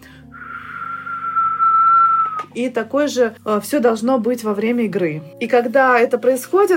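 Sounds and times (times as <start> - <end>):
person whistling one long steady note: 0.3 - 2.5
speech: 2.6 - 6.7.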